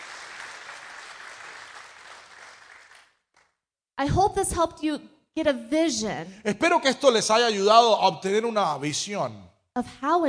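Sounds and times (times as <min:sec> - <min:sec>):
audience applause for a small group during a church service: 0:00.0 - 0:03.2
speech: 0:04.0 - 0:10.2.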